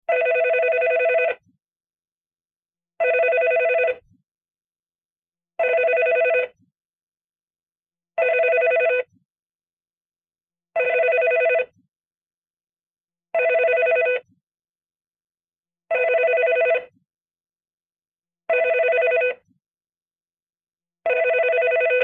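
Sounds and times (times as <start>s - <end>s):
classic phone ringing: 0.1s - 1.5s, 3.0s - 4.0s, 5.6s - 6.6s, 8.2s - 9.1s, 10.8s - 11.7s, 13.4s - 14.3s, 15.9s - 17.0s, 18.5s - 19.5s, 21.1s - 22.0s.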